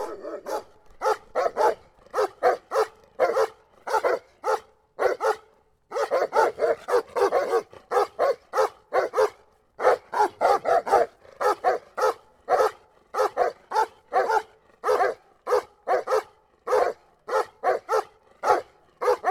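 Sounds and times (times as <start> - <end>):
two dogs barking: 0.0 - 19.2.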